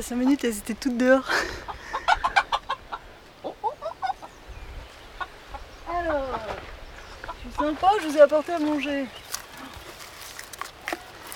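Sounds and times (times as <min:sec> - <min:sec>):
speech: 0:00.0 - 0:01.8, 0:07.6 - 0:09.2
hens clucking: 0:01.4 - 0:08.0.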